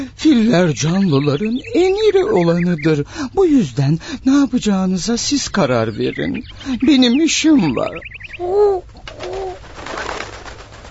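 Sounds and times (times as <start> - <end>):
speech: 0.0 - 8.9
turtle dove cooing: 0.2 - 3.1, 5.5 - 9.7
turtle dove flying away: 9.0 - 10.8.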